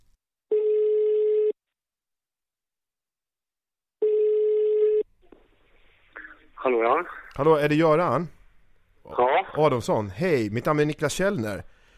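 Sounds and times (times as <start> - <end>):
ringing tone of an outgoing telephone call: 0.5 - 1.6, 4.0 - 5.0
speech: 6.6 - 8.4, 9.1 - 11.7.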